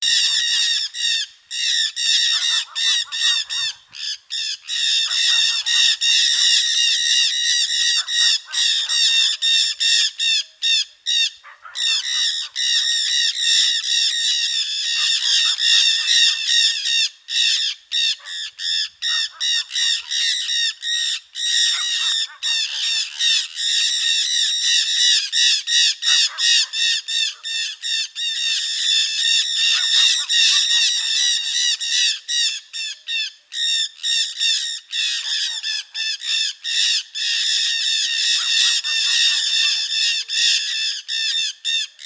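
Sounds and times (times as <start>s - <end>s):
Aratinga testadorada parakeet: 0.0s - 42.0s.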